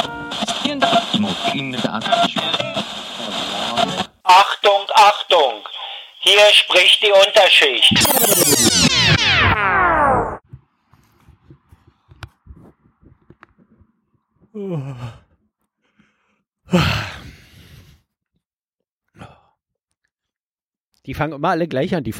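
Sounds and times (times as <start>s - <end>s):
speech: 0.7s - 9.8s, 14.6s - 15.2s, 16.7s - 17.2s, 21.1s - 22.1s
person yawning: 14.5s - 15.4s, 16.7s - 17.5s, 19.2s - 19.5s.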